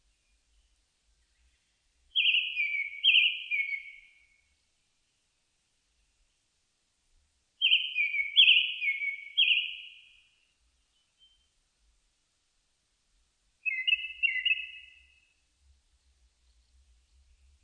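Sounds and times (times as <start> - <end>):
Japanese thrush whistling song: 2.2 - 4.3, 7.6 - 10.1, 13.6 - 15.2.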